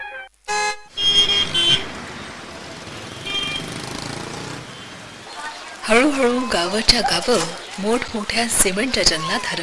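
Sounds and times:
car horn toots: 0:00.5 - 0:02.1, 0:02.9 - 0:05.0
city traffic noise of cars and motor vehicles: 0:00.6 - 0:09.6
speech: 0:05.9 - 0:09.6.

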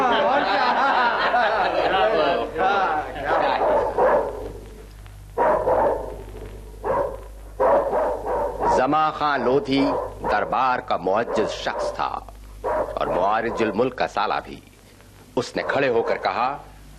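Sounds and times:
laughter: 0:00.0 - 0:04.0
dog barking: 0:03.3 - 0:04.5, 0:05.4 - 0:06.2, 0:06.8 - 0:09.0, 0:09.7 - 0:13.8, 0:15.6 - 0:16.6
speech: 0:08.8 - 0:12.3, 0:13.0 - 0:14.7, 0:15.4 - 0:16.7.

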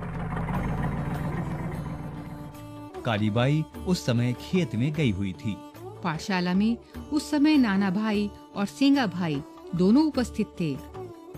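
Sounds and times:
truck engine idling outside a village school in Rastapal: 0:00.0 - 0:04.1
speech: 0:03.0 - 0:11.0.

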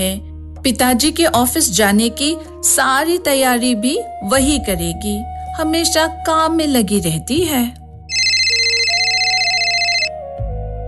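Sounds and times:
speech: 0:00.0 - 0:07.8
mobile phone ringtone with bright electronic tone: 0:08.1 - 0:10.2.

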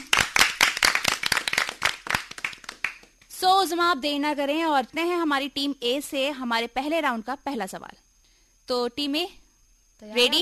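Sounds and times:
quiz-contest audience applause: 0:00.0 - 0:03.1
speech: 0:03.4 - 0:08.0, 0:08.7 - 0:09.4, 0:10.0 - 0:10.4.

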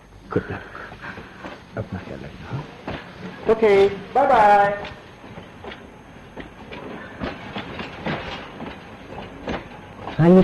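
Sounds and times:
train departing from a station: 0:00.0 - 0:10.4
speech: 0:00.3 - 0:01.2, 0:01.8 - 0:05.0, 0:10.2 - 0:10.4
train wheels clickety-clack over rail joints: 0:02.8 - 0:10.4.

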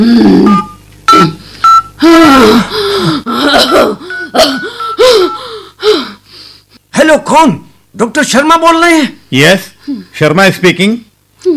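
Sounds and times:
phone dialing beeps calling a doctor: 0:00.5 - 0:01.9, 0:04.1 - 0:05.4
loud strained gasping and moaning breaths: 0:02.0 - 0:06.7
speech: 0:07.3 - 0:11.5.

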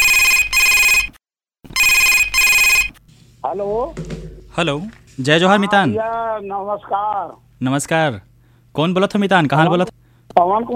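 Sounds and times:
telephone ringing for a radio phone-in call: 0:00.0 - 0:01.1, 0:01.7 - 0:03.0
speech: 0:03.5 - 0:10.7.

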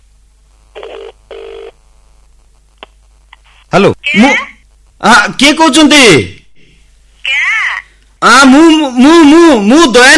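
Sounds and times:
telephone ringing on an outgoing call to a grocery shop: 0:00.8 - 0:01.7
speech: 0:03.8 - 0:06.4, 0:08.2 - 0:10.1.

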